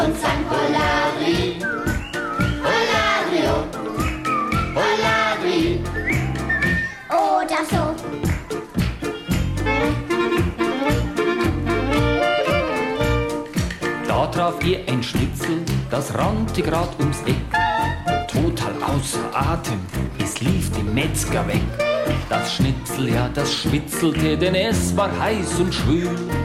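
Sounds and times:
lively upbeat music with a steady beat: 0.0s - 26.4s
person whistling a cheerful carefree tune: 1.3s - 3.0s, 3.8s - 5.1s, 5.9s - 7.1s
speech: 14.4s - 17.5s, 18.9s - 26.4s.

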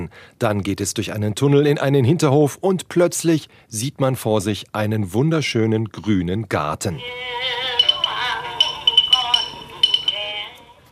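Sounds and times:
speech: 0.0s - 7.7s
Vietnamese singing from old cassette player: 7.0s - 10.9s
sharp glassy clinks: 7.7s - 10.5s.

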